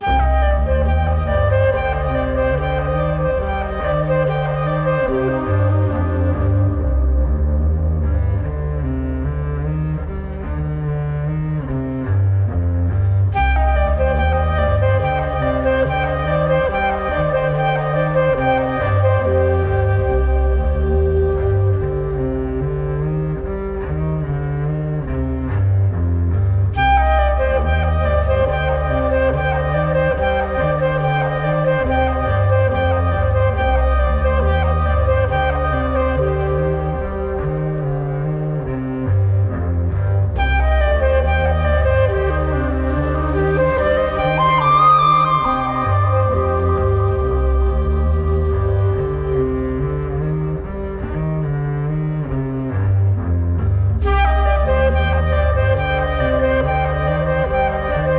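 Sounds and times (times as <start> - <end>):
flute with echo: 0.0 - 9.0, 13.2 - 23.8, 26.8 - 51.1, 53.6 - 58.1
bowed bass: 0.0 - 58.1.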